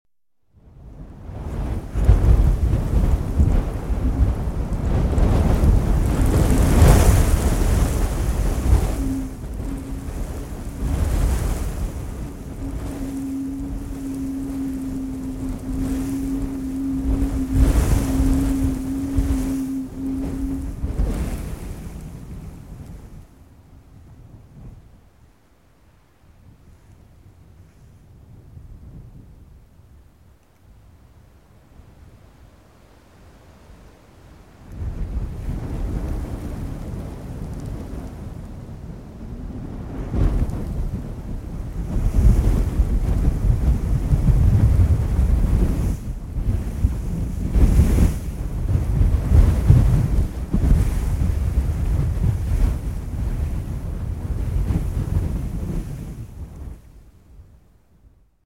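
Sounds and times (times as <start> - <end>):
heavy gusts of wind moaning: 0.6 - 30.0, 31.6 - 58.2.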